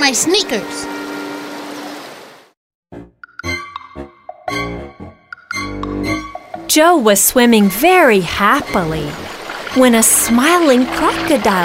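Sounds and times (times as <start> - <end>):
speech: 0.0 - 1.0, 6.8 - 11.6
rushing water from a large river: 0.0 - 2.5, 7.1 - 11.6.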